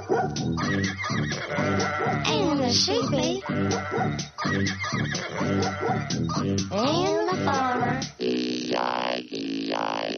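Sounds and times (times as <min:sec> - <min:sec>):
dog barking: 0:00.0 - 0:00.4, 0:02.0 - 0:02.2, 0:03.4 - 0:04.2, 0:05.4 - 0:06.1
speech: 0:00.2 - 0:10.0
horse neighing: 0:00.6 - 0:02.3, 0:03.4 - 0:06.2.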